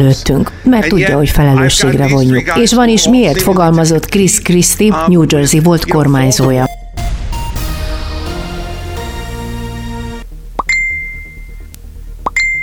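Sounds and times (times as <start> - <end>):
speech: 0.0 - 6.7
dense sustained music: 6.3 - 12.6
messaging app new-message chime: 6.4 - 7.9.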